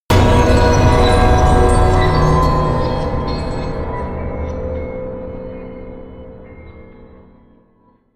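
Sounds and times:
distorted high bell: 0.1 - 4.9.

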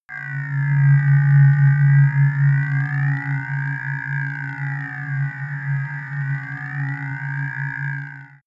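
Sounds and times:
sci-fi ambient scanner drone: 0.1 - 8.4.

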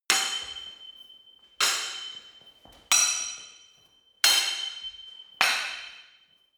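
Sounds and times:
sword hitting sword: 0.1 - 0.8, 1.6 - 2.3, 2.9 - 3.6, 4.2 - 6.1.

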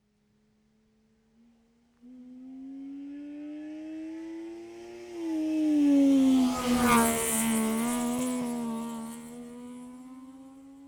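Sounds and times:
Saab 92 car passing left to right: 2.8 - 10.8.

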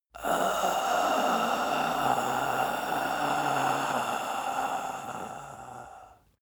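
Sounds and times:
man exhaling while dying: 0.1 - 6.4.

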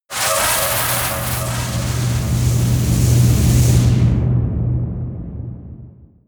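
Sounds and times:
air screaming vortex: 0.1 - 4.3.

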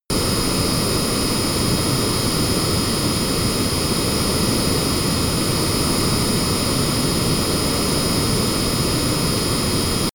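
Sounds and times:
Honda small private plane turbine at full power: 0.1 - 10.1.

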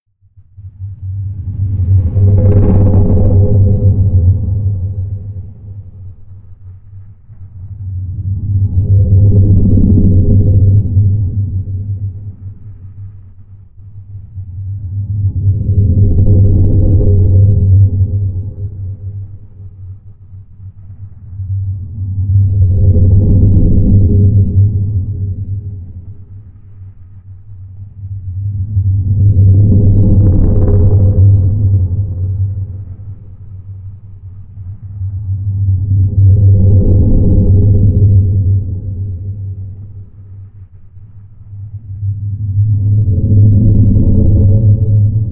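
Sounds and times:
rotating earthquake rumble: 0.2 - 45.2.

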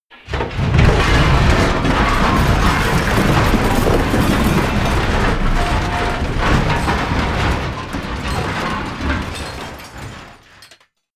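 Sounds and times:
loud medium metal impact: 0.5 - 8.7.

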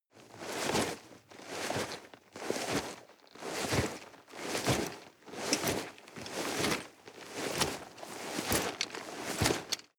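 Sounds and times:
nylon and leather rustling while walking: 0.2 - 9.9.

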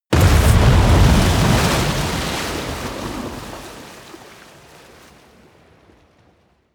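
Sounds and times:
large water explosion: 0.1 - 4.0.

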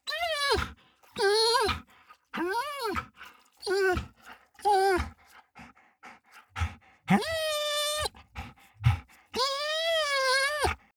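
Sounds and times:
dog whining heavily: 0.1 - 1.8, 2.4 - 3.0, 3.6 - 5.1, 7.1 - 10.8.

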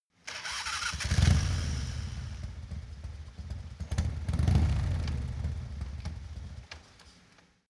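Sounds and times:
Harley motorcycle engine ignition start: 0.3 - 6.6.

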